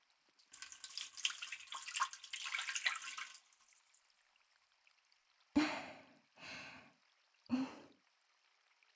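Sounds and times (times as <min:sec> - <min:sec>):
hot water pouring in a rinse: 0:00.4 - 0:05.1.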